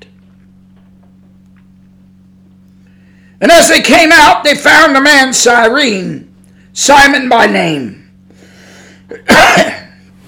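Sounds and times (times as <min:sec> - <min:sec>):
faint low hum: 0:00.0 - 0:10.2
short sharp intake of breath: 0:02.8 - 0:03.4, 0:08.3 - 0:09.2
speech: 0:03.4 - 0:08.0, 0:09.1 - 0:09.8
cough brought on by the rain: 0:09.1 - 0:10.1.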